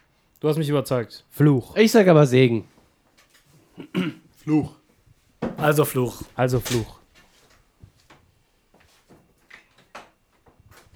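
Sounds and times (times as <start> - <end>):
speech: 0.4 - 2.7, 3.8 - 4.8, 5.6 - 7.0
door opening and closing with knocks, clicks and rattles: 5.4 - 7.0.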